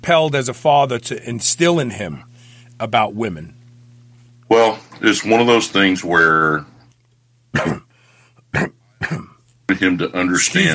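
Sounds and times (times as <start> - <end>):
speech: 0.0 - 3.6, 4.5 - 6.7, 7.5 - 7.8, 8.5 - 10.7
faint steady low hum: 0.0 - 10.7
person coughing: 7.5 - 9.4.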